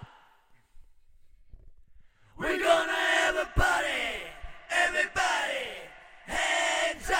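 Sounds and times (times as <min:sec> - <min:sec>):
heavy metal a cappella vocals: 0:02.4 - 0:07.1.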